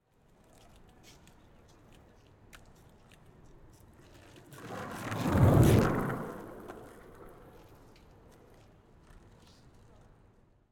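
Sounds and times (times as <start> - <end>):
skateboard passing by left to right: 4.0 - 9.4.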